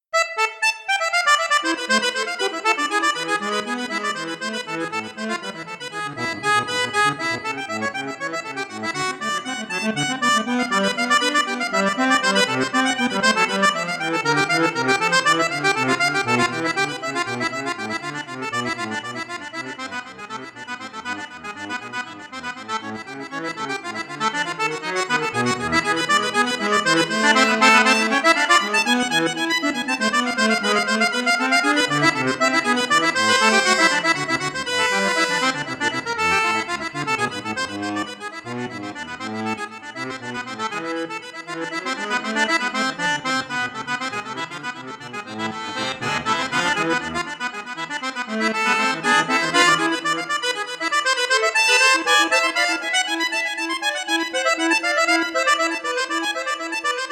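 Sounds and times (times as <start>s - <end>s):
accordion register 16 4: 0.0s - 57.1s.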